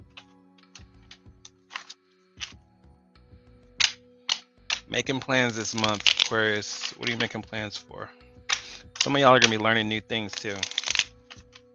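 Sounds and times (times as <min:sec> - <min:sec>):
tarot cards being shuffled: 0:00.2 - 0:02.6, 0:03.8 - 0:07.9, 0:08.5 - 0:11.7
speech: 0:04.9 - 0:08.2, 0:09.0 - 0:10.8.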